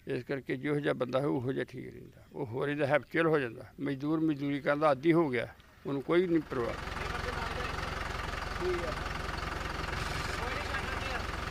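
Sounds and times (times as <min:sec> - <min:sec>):
speech: 0:00.1 - 0:07.0, 0:08.6 - 0:09.1
tractor engine running: 0:05.6 - 0:11.4.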